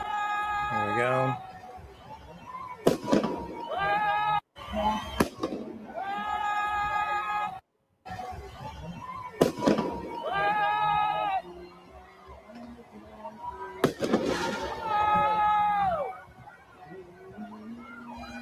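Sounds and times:
noisy street crowd shouting: 0:00.0 - 0:18.4
whistle-like tones: 0:00.0 - 0:18.4
speech: 0:01.0 - 0:01.5
fireworks bangs at a street protest: 0:02.8 - 0:03.8, 0:04.9 - 0:06.0, 0:09.4 - 0:10.3, 0:13.8 - 0:15.1.

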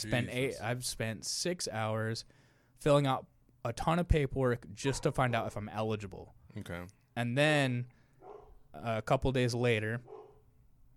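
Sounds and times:
speech: 0:00.0 - 0:08.0, 0:08.7 - 0:10.1
dog barking: 0:04.9 - 0:05.2, 0:08.2 - 0:08.6, 0:10.0 - 0:10.4.

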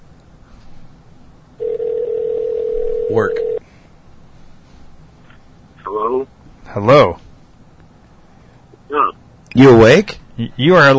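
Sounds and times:
steady electronic phone ringing tone on an outgoing call: 0:01.6 - 0:03.6
speech: 0:03.1 - 0:03.4, 0:06.8 - 0:07.2, 0:09.6 - 0:10.9.

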